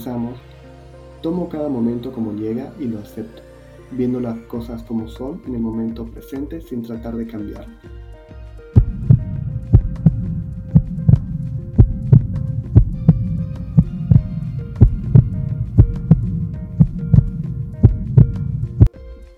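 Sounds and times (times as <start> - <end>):
speech: 0.0 - 0.5, 1.2 - 8.1
heartbeat pulse sound effect thumping: 8.8 - 19.3.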